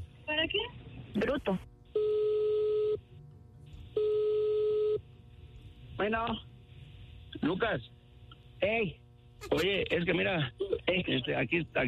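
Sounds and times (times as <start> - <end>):
speech: 0.5 - 2.1, 6.0 - 6.5, 7.4 - 8.0, 8.6 - 11.8
telephone ringback tone after dialing a call: 2.0 - 3.0, 4.0 - 5.0.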